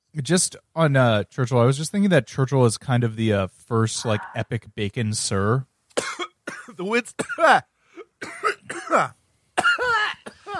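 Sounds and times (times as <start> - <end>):
speech: 0.2 - 5.7, 6.8 - 9.2
person coughing: 6.0 - 10.5.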